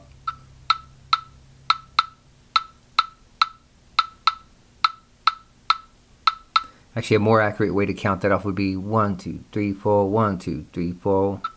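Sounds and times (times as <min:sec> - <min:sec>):
wooden clave playing the forward three-two rhythm: 0:00.0 - 0:06.7, 0:11.4 - 0:11.5
speech: 0:07.0 - 0:11.5.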